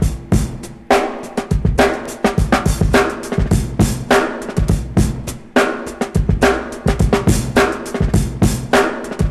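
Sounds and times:
fresh drum groove in G sharp at 103 bpm: 0.0 - 9.2.

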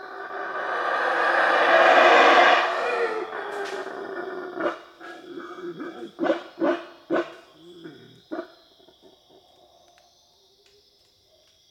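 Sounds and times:
black howler monkey making harsh guttural barks: 0.0 - 9.1
black howler monkey low grunting: 3.3 - 9.2.

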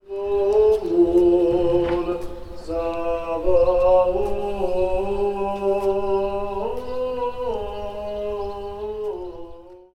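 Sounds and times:
Orthodox priest singing: 0.0 - 9.9
birds: 0.0 - 9.9.

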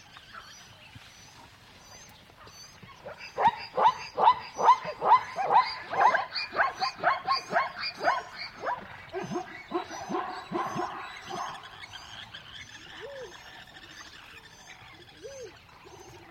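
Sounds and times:
savannah dog yapping in a savannah: 3.0 - 11.6.

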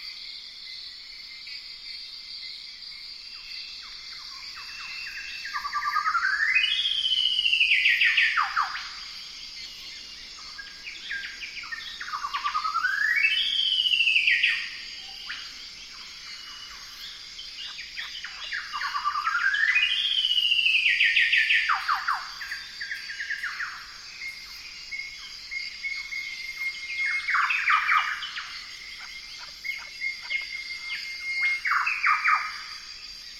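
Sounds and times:
golden whistler bird singing: 3.4 - 33.3.

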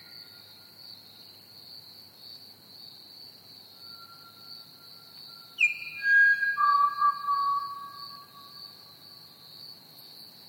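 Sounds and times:
shrill cricket chorus: 0.0 - 10.4
Pied Butcherbird song of flute-like whistles: 5.6 - 8.3.

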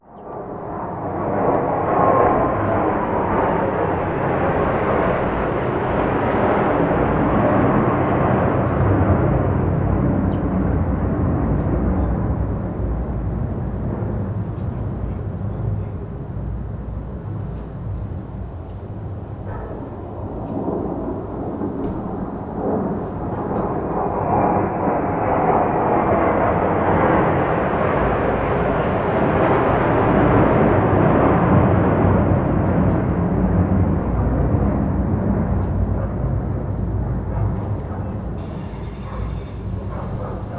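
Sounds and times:
F16 fighter jet passing by: 0.0 - 40.5
dog barking: 19.4 - 20.0, 37.2 - 40.5.

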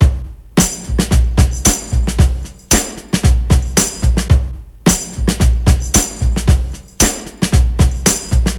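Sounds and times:
112 bpm breakbeat sample in C key: 0.0 - 8.5.

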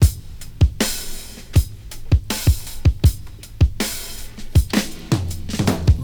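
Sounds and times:
breakbeat drum loop in E: 0.0 - 6.0.

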